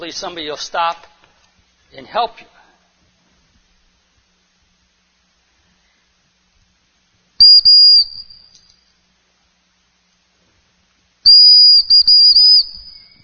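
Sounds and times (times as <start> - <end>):
speech: 0.0 - 1.1, 1.9 - 2.6
shrill emergency whistle blowing: 7.4 - 8.7, 11.2 - 13.2.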